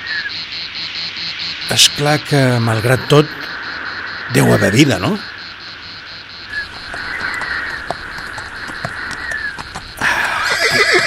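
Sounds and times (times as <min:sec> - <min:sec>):
insects buzzing: 0:00.0 - 0:11.0
speech: 0:01.7 - 0:03.5, 0:04.3 - 0:05.3
faint horse hoof clops: 0:06.6 - 0:11.0
horse whinnying: 0:10.0 - 0:11.0.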